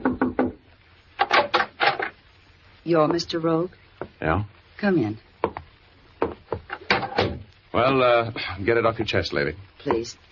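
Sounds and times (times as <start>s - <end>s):
knuckles knocking on the wooden door of a roadside cabin: 0.0s - 0.6s, 5.4s - 7.4s
speech: 2.9s - 5.3s, 7.8s - 10.3s.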